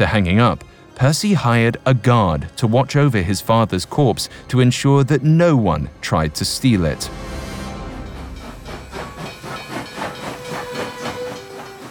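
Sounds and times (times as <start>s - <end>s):
speech: 0.0s - 7.4s
steam train chugging with puffs of hissing steam: 3.0s - 11.8s.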